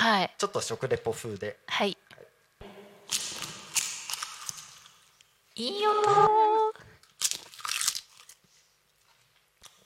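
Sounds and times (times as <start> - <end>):
speech: 0.2 - 2.2, 5.6 - 6.4
crunching bites into a crunchy seaweed-flavoured snack: 7.2 - 8.4.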